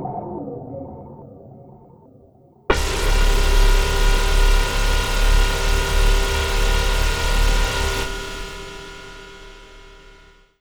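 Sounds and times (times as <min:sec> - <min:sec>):
ambience: 0:02.7 - 0:10.4.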